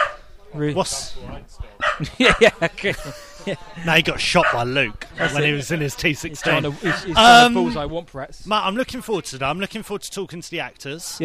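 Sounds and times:
dog barking: 0.0 - 0.2, 1.8 - 2.1, 4.4 - 5.4, 6.8 - 7.2
speech: 0.6 - 11.2
laughter: 2.0 - 4.1.

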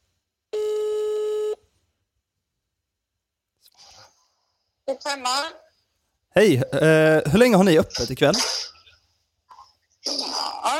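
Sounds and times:
electronic telephone ringback tone while phoning a Thai food restaurant: 0.6 - 1.6
speech: 4.9 - 5.6, 6.3 - 8.7.

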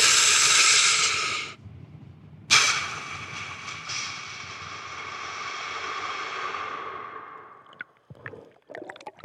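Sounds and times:
deep breathe-up breathing before a free dive: 0.0 - 1.6, 2.5 - 7.7.

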